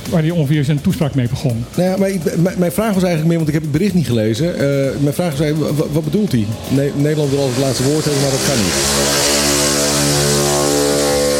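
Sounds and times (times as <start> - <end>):
speech: 0.1 - 9.4
loud buzzing engine of a slow moped driving past: 4.2 - 11.3.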